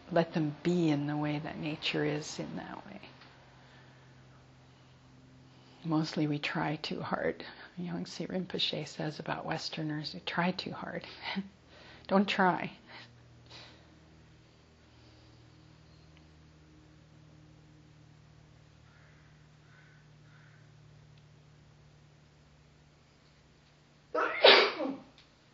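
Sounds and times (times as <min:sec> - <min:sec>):
room hum: 0:00.0 - 0:25.5
speech: 0:00.1 - 0:03.2, 0:05.8 - 0:13.1
loud sneeze: 0:24.2 - 0:25.1.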